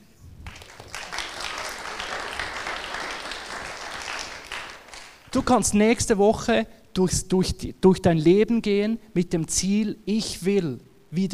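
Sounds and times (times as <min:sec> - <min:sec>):
audience applause: 0:00.4 - 0:05.3
speech: 0:05.3 - 0:11.3.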